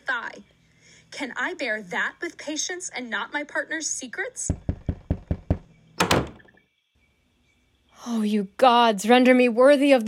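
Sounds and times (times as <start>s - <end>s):
speech: 1.1s - 4.6s, 8.1s - 10.0s
knocking on a wooden door: 4.5s - 6.5s
rattling bang: 6.0s - 6.5s.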